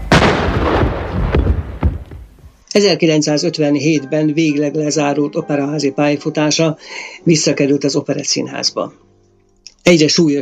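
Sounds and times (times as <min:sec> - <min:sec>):
pistol gunshot with decay: 0:00.0 - 0:02.1
sharp cracks: 0:00.0 - 0:02.4
speech: 0:02.8 - 0:09.0, 0:09.8 - 0:10.3.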